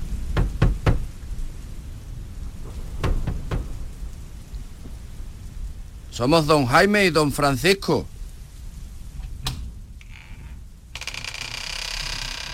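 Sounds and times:
steady rain-like hiss: 0:00.0 - 0:12.5
sharp knocking on a door: 0:00.3 - 0:01.1, 0:03.0 - 0:03.7
speech: 0:06.2 - 0:08.1.

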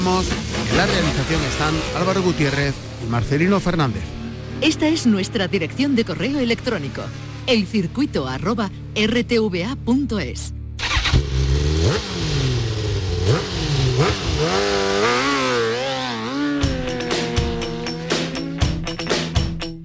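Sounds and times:
motorcycle engines revving as the bikes accelerate and shift: 0:00.0 - 0:09.3, 0:10.8 - 0:19.0
speech: 0:00.0 - 0:10.6.

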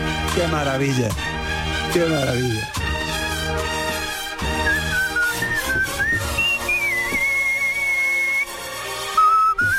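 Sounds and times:
speech: 0:00.4 - 0:01.4, 0:02.0 - 0:02.8
steady band music: 0:03.0 - 0:08.4
man whistling a wavering melody: 0:04.5 - 0:09.7.

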